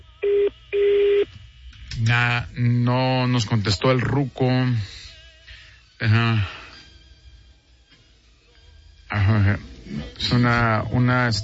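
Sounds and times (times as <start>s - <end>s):
telephone voicemail tones, a short beep and a longer beep: 0.2s - 1.3s
speech: 2.1s - 5.0s, 6.0s - 6.6s, 9.2s - 11.4s.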